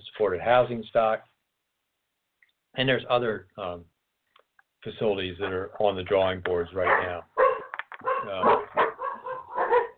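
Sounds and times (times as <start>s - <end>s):
speech: 0.2s - 1.3s, 2.8s - 3.9s, 4.8s - 7.3s, 8.2s - 8.6s
poodles barking and yipping: 6.8s - 9.9s.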